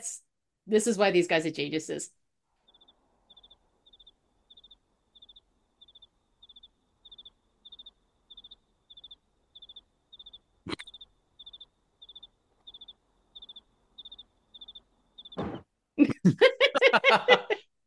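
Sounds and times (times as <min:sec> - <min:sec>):
speech: 0:00.0 - 0:02.2
cricket chirping: 0:02.6 - 0:15.4
sharp knock: 0:15.4 - 0:15.7
laughter: 0:16.0 - 0:17.6.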